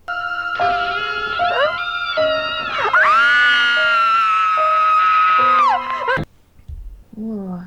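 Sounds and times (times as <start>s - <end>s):
wavering high-pitched human cries: 0.0s - 6.2s
person screaming: 1.4s - 5.9s.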